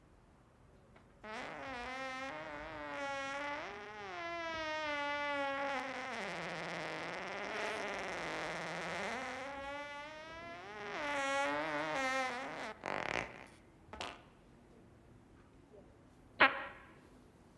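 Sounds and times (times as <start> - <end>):
long drawn-out fart: 1.2 - 14.2, 16.4 - 17.0.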